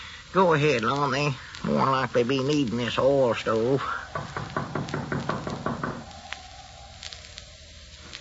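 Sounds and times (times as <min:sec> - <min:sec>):
speech: 0:00.3 - 0:04.6
knocking on a wooden door: 0:04.2 - 0:06.1.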